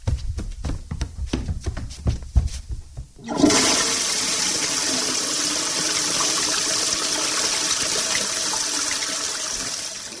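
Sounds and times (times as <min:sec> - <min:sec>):
low thumping and shuffling: 0:00.0 - 0:03.3
toilet flushing: 0:03.2 - 0:10.1.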